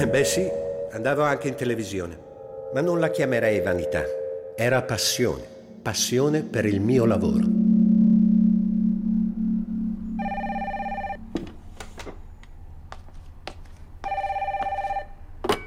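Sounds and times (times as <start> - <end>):
speech: 0.0 - 7.5
low steady tone: 0.0 - 11.4
telephone ringing with an incoming call: 10.2 - 11.3, 14.0 - 15.2.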